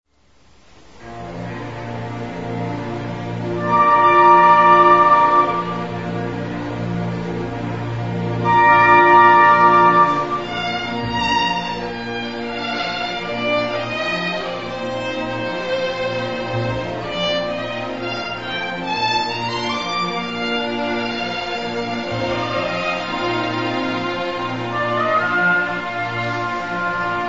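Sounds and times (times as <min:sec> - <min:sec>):
violin: 0:00.9 - 0:27.2.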